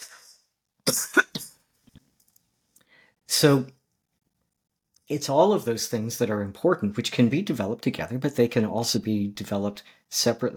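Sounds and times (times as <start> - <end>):
person coughing harshly: 0.9 - 1.6
speech: 3.4 - 3.8, 5.1 - 10.5.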